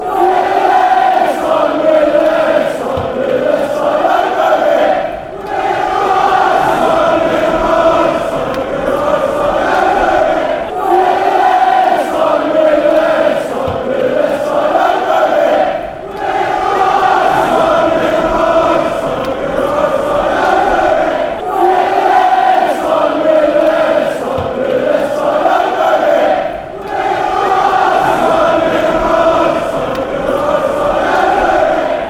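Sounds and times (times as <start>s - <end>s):
crowd chanting: 0.0s - 32.0s.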